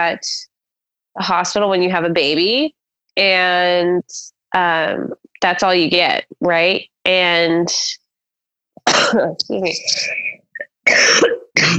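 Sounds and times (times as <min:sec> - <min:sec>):
speech: 0:00.0 - 0:00.5, 0:01.2 - 0:08.0, 0:08.9 - 0:10.3, 0:10.9 - 0:11.7
person coughing and clearing throat: 0:08.8 - 0:11.7.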